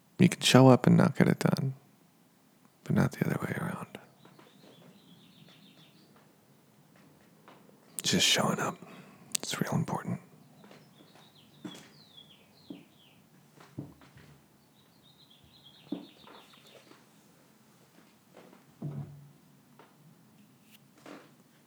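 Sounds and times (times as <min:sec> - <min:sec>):
speech: 0:00.2 - 0:01.8, 0:02.9 - 0:03.8, 0:08.0 - 0:10.2
small birds chirping and twittering outside: 0:02.9 - 0:17.2
soft knocks and thumps: 0:13.6 - 0:14.4, 0:18.4 - 0:19.2.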